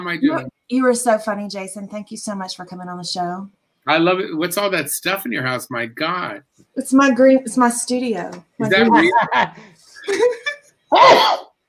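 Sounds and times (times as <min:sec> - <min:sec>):
speech: 0:00.0 - 0:11.5
short voiced bursts like chuckles or murmurs: 0:00.2 - 0:00.5, 0:08.6 - 0:09.2
laughter: 0:08.6 - 0:10.6
loud sneeze: 0:10.9 - 0:11.5.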